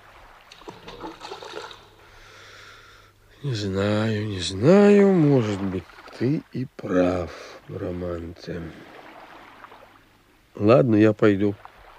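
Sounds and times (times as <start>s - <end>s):
flowing river water: 0.0s - 11.9s
stone thrown splashing into a river: 0.5s - 1.9s
speech: 3.4s - 8.9s, 10.6s - 11.7s.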